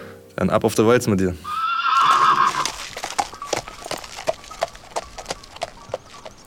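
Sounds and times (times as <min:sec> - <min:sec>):
speech: 0:00.4 - 0:01.6
large black work horse giving a quavering whinny: 0:01.4 - 0:06.4
work horse hooves clip-clopping on a hard surface: 0:01.9 - 0:06.4.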